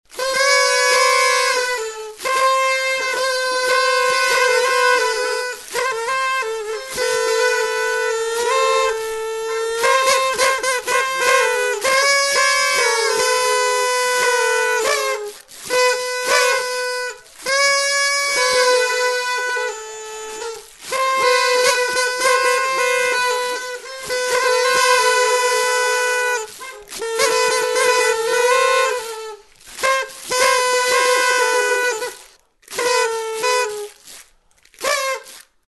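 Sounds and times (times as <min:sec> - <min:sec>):
trumpets playing party music: 0:00.1 - 0:35.6.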